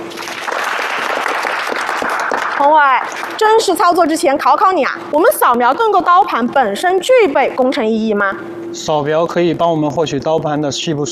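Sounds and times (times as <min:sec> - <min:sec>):
class applauding: 0:00.0 - 0:04.0
speech: 0:02.6 - 0:11.1.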